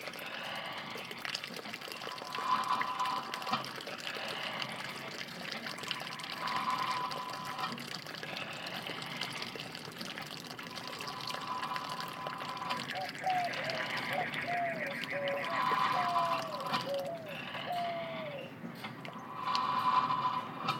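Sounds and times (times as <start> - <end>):
water gushing from a windmill pipe: 0.0 - 18.4, 19.1 - 20.7.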